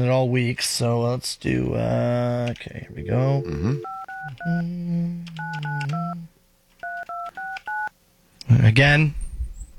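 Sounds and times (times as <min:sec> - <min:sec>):
speech: 0:00.0 - 0:06.3, 0:08.5 - 0:09.2
low hum: 0:01.4 - 0:06.5
touch-tone beeps of a telephone number being dialed: 0:03.4 - 0:04.6, 0:05.4 - 0:06.2, 0:06.8 - 0:07.9.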